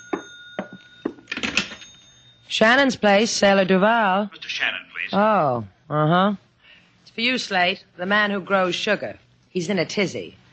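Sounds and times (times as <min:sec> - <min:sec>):
old-fashioned telephone bell ringing: 0:00.0 - 0:02.6
speech: 0:02.5 - 0:06.4, 0:07.2 - 0:10.4.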